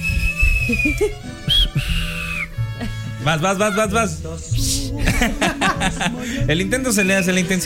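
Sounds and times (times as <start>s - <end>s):
person whistling sustained high notes: 0.0s - 2.8s, 6.8s - 7.6s
speech: 0.7s - 2.0s, 2.8s - 7.6s
laughter: 0.8s - 3.8s, 4.9s - 6.7s.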